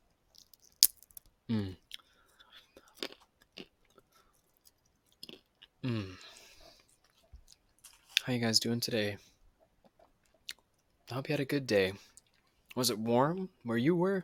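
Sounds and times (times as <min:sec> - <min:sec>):
pistachio shells cracking: 0:00.3 - 0:01.3
person chewing pistachios: 0:00.3 - 0:08.2, 0:09.6 - 0:10.9
speech: 0:01.5 - 0:01.8, 0:08.3 - 0:09.3, 0:11.1 - 0:12.1, 0:12.8 - 0:14.2
soft mouth sounds during ASMR eating: 0:01.5 - 0:02.0, 0:05.8 - 0:06.4.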